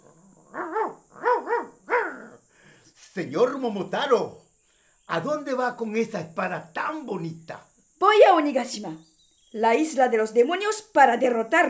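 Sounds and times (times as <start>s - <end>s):
dog barking: 0.0s - 2.4s
faint steady high hiss: 0.0s - 11.6s
speech: 3.2s - 4.4s, 5.1s - 11.6s.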